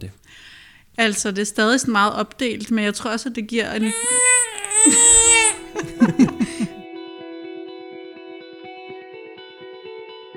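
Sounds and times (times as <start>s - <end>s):
speech: 0.0s - 4.2s, 6.0s - 6.6s
baby crying: 3.7s - 6.8s
laughter: 3.9s - 6.8s.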